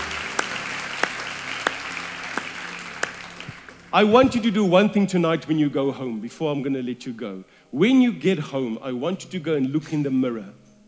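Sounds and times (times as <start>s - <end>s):
crowd applauding: 0.0s - 4.5s
speech: 3.9s - 10.6s.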